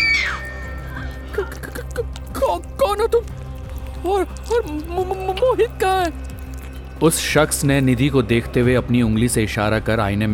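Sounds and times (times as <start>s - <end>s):
woman screaming high-pitched: 0.0s - 1.7s
speech: 2.5s - 3.3s, 4.0s - 6.3s, 7.0s - 10.3s.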